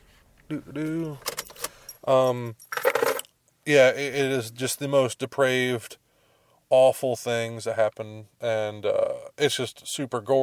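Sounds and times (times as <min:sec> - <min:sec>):
speech: 0:00.5 - 0:01.3, 0:02.0 - 0:02.7, 0:03.7 - 0:06.0, 0:06.7 - 0:10.4
car keys jangling: 0:01.0 - 0:03.3.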